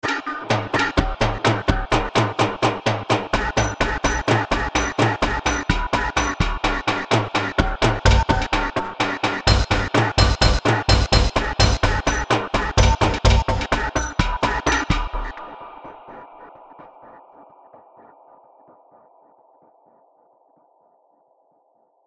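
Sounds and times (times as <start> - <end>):
eerie tribal staccato rhythm composition: 0.1 - 15.6.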